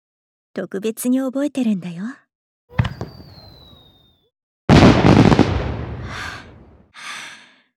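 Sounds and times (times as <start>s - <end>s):
speech: 0.6s - 2.2s
firework sharp pop with thin whistle in the night sky: 2.7s - 4.3s
loud rumbling firework burst full of crackle: 4.7s - 6.9s.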